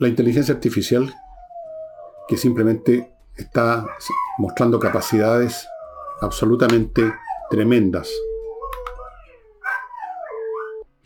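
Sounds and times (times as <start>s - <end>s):
speech: 0.0s - 1.3s, 2.3s - 8.3s
dogs barking: 0.4s - 10.9s.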